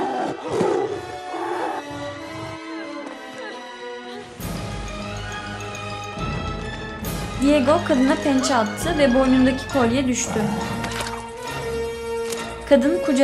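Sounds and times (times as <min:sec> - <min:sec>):
tigers roaring and snarling: 0:00.0 - 0:03.2, 0:10.1 - 0:11.7
speech: 0:07.4 - 0:10.8, 0:12.7 - 0:13.2.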